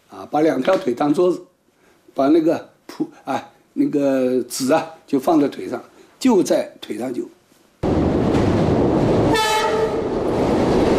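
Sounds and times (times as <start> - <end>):
speech: 0.1 - 1.5, 2.2 - 7.4
train from Hong Kong to Guangzhou rumbling: 7.8 - 10.9
train horn blast: 9.3 - 10.1.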